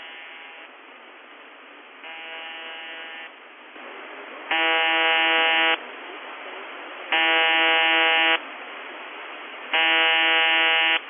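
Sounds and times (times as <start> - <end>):
shortwave radio buzzer transmission: 0.0 - 0.7, 2.0 - 3.4, 4.5 - 5.8, 7.1 - 8.4, 9.7 - 11.0
shortwave static: 0.0 - 0.7, 2.0 - 11.0.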